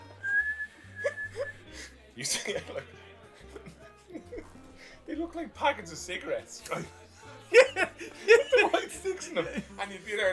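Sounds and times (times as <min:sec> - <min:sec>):
small candy whistle holding a thin steady high-pitched tone: 0:00.0 - 0:01.6
laughter: 0:00.9 - 0:05.0, 0:07.4 - 0:10.3
speech: 0:02.2 - 0:03.0, 0:05.1 - 0:10.3.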